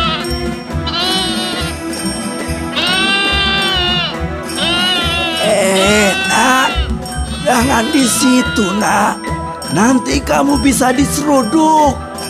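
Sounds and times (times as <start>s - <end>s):
loose billy goat bleating at a market: 0.0s - 1.8s, 2.7s - 9.2s
speech: 7.7s - 12.0s.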